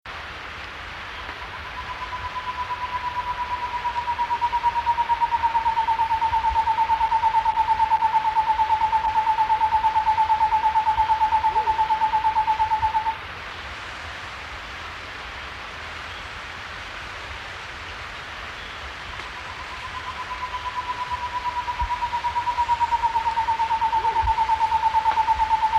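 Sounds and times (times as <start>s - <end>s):
Cloud-forest Screech-Owl in S. America: 1.4s - 13.2s, 19.1s - 25.7s.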